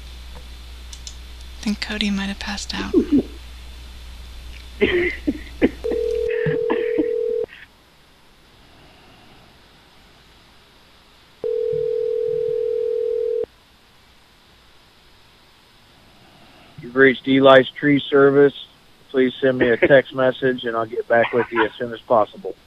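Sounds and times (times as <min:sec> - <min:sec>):
faint hiss: 0:00.0 - 0:22.6
speech: 0:01.6 - 0:03.4, 0:17.2 - 0:22.6
laughter: 0:02.9 - 0:03.4, 0:04.8 - 0:07.6, 0:19.4 - 0:20.2, 0:20.9 - 0:22.1
telephone keypad tones: 0:05.8 - 0:07.4
telephone ringback tones: 0:05.8 - 0:07.5, 0:11.4 - 0:13.5.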